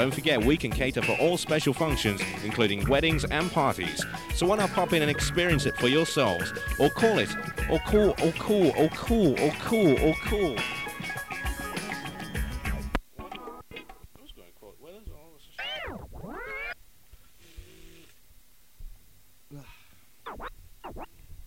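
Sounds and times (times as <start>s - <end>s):
speech: 0.0s - 10.8s
loud music: 2.0s - 12.8s
person imitating cat meows: 15.6s - 16.8s.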